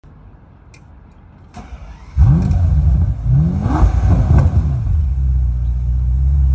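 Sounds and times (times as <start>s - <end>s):
Bentley car exhaust: 1.8s - 6.5s.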